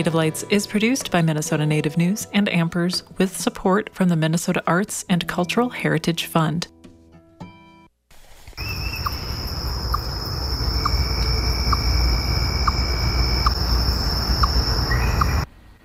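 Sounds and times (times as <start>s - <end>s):
speech: 0.0s - 6.8s
insects buzzing in August: 8.5s - 15.5s
chipmunk chirping: 8.6s - 15.5s.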